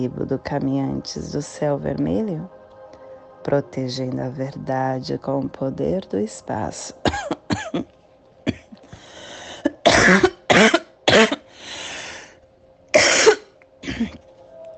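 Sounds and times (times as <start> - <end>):
speech: 0.0 - 2.6, 3.4 - 7.9, 10.1 - 10.3
person in a loud coughing fit: 7.0 - 7.9, 8.5 - 8.8, 9.6 - 11.5, 13.0 - 14.2
raspy breaths and throat noise: 8.8 - 9.8, 11.4 - 12.4.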